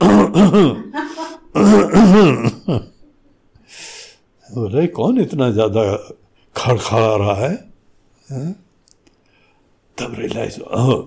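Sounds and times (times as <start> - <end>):
speech: 0.0 - 0.9, 1.6 - 2.9, 4.7 - 7.7, 8.3 - 8.6, 10.0 - 11.0
man's voice mimicking a driver coughing: 0.0 - 3.0
breathy exhale: 3.6 - 4.2.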